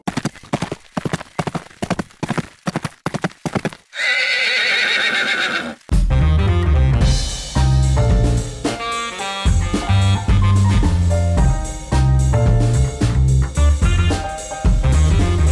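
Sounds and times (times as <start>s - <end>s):
horse hooves clip-clopping: 0.0s - 5.9s
horse neighing: 3.9s - 5.9s
music: 5.9s - 15.5s.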